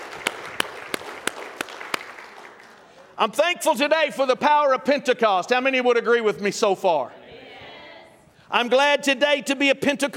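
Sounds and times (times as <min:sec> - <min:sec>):
sharp evenly spaced louder claps: 0:00.0 - 0:03.0
audience applauding: 0:00.0 - 0:03.1
speech: 0:03.2 - 0:07.2, 0:08.5 - 0:10.1.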